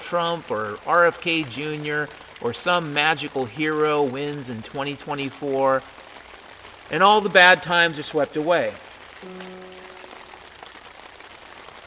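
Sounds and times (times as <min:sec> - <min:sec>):
hard rain falling: 0:00.0 - 0:11.8
speech: 0:00.1 - 0:06.0, 0:06.9 - 0:09.7
brief low humming tone: 0:09.2 - 0:10.8.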